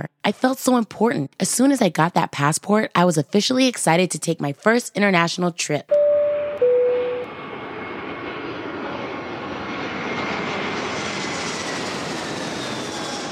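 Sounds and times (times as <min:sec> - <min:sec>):
speech: 0:00.0 - 0:06.0
electronic tone: 0:05.9 - 0:07.3
private jet engines roaring in flight heard from inside the jet: 0:06.6 - 0:13.3.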